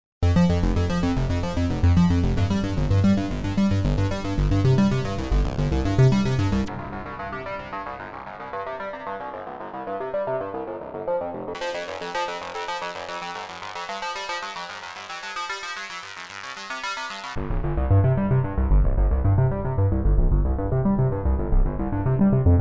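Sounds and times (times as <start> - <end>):
Nord Stage 3 filtered synth arpeggio: 0.2 - 22.5.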